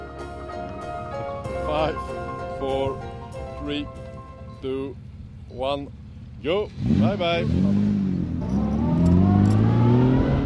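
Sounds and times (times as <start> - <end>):
speech: 1.7 - 4.0, 4.6 - 8.1
rally car engine revving and accelerating away from the start: 6.6 - 10.4.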